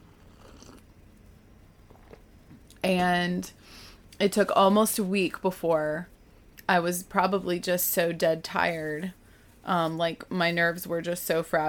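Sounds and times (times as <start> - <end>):
person sipping tea: 0.0 - 0.9, 1.8 - 2.3
low steady hum: 0.0 - 11.6
speech: 2.8 - 6.1, 6.7 - 11.6.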